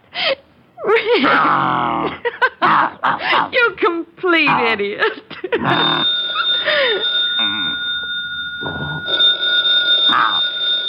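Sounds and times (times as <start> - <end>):
speech: 0.9 - 7.7
old-fashioned telephone bell ringing: 5.7 - 10.8.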